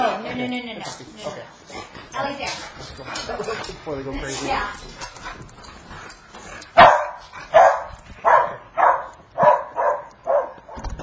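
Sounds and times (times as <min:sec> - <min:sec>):
speech: 0:00.2 - 0:05.5
dog barking: 0:06.8 - 0:10.8.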